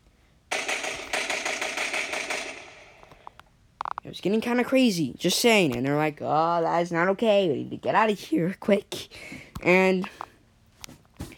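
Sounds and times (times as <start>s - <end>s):
loud rapid burst of gunfire: 0.5s - 3.1s
speech: 4.1s - 10.2s.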